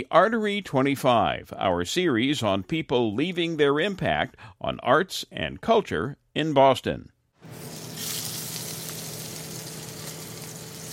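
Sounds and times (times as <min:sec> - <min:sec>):
speech: 0:00.0 - 0:07.2
prawns sizzling in a hot frying pan at a restaurant: 0:07.4 - 0:10.9.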